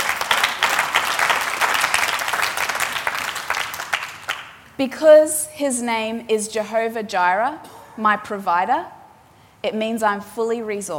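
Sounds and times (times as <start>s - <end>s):
audience applause: 0.0s - 4.6s
speech: 4.8s - 9.0s, 9.6s - 10.9s.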